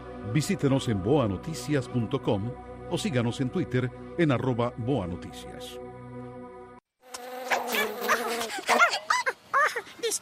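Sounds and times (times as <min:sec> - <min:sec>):
speech: 0:00.2 - 0:05.8
mosquitoes buzzing: 0:07.0 - 0:08.8.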